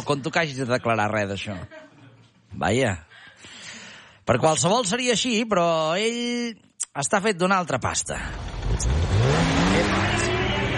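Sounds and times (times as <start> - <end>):
speech: 0.0 - 1.8, 2.5 - 3.6, 4.3 - 10.3
laughter: 0.0 - 2.5
Guardia Civil police car engine revving past: 8.2 - 10.7.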